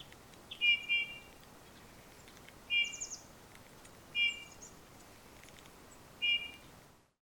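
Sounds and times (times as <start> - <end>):
Eurasian bullfinch Pyrrhula pyrrhula calling: 0.5 - 1.3, 2.7 - 3.2, 4.2 - 4.7, 6.2 - 6.6.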